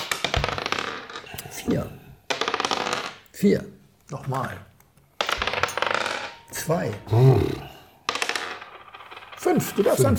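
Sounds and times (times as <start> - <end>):
dice clattering across a hard tabletop: 0.0 - 1.4, 2.3 - 3.4, 5.1 - 10.1
speech: 1.7 - 2.0, 3.4 - 4.7, 6.6 - 7.7, 9.4 - 10.1.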